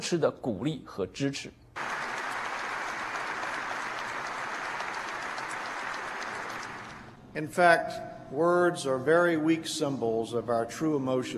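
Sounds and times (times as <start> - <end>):
speech: 0.0 - 1.9, 7.4 - 11.3
large standing crowd applauding: 1.8 - 7.2.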